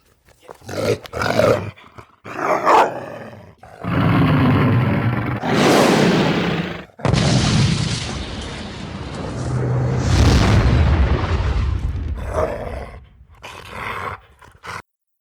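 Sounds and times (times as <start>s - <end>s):
dachshund barking as deep booming roars: 0.7s - 7.0s, 12.2s - 14.8s
gravel debris scattering and crunching: 7.0s - 12.8s
booming impact tearing up a gravel path: 7.0s - 13.4s.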